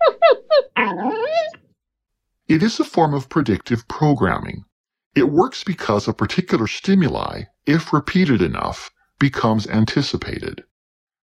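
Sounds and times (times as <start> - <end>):
dog giving high whimpering yelps: 0.0 - 1.6
speech: 2.5 - 10.7.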